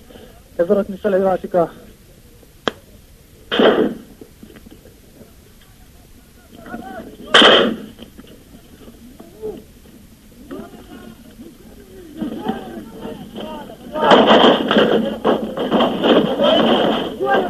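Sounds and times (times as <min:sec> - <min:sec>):
faint voices murmuring: 0:00.0 - 0:17.4
speech: 0:00.6 - 0:01.8
heavier booming shots: 0:03.5 - 0:04.2, 0:07.3 - 0:08.0, 0:13.0 - 0:17.4
sharp crack of Jordanian sniper fire: 0:03.5 - 0:04.2, 0:07.3 - 0:08.0.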